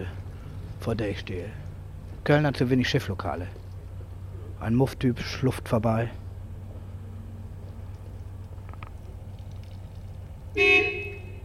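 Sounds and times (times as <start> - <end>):
speech: 0.8 - 1.6, 2.2 - 3.6, 4.6 - 6.2
car horn honking outside a run-down building in Cologne: 10.6 - 11.4.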